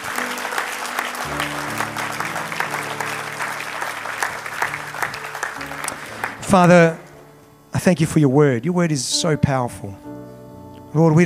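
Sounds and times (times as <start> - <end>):
audience clapping as a clap offering: 0.0 - 7.2
speech: 6.5 - 7.0, 7.7 - 10.1, 10.9 - 11.2.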